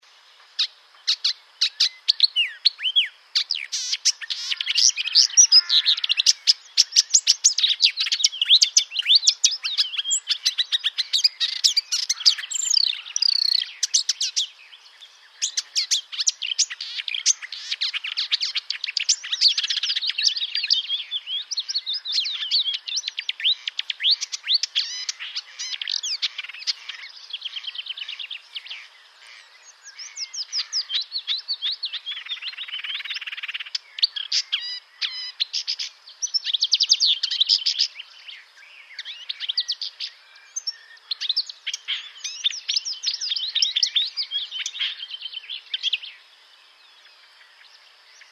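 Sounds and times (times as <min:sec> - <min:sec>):
marsh warbler singing: 0:00.0 - 0:48.3.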